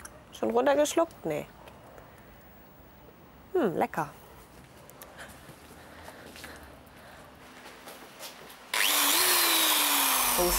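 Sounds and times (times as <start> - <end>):
speech: 0.4 - 1.6, 3.5 - 4.2, 10.4 - 10.5
power drill boring a hole into a tree trunk: 8.7 - 10.5.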